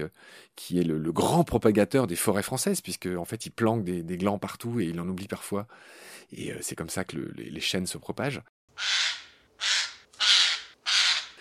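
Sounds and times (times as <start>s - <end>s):
speech: 0.0s - 9.0s
Eurasian jay giving harsh rasping screeches: 8.8s - 11.3s.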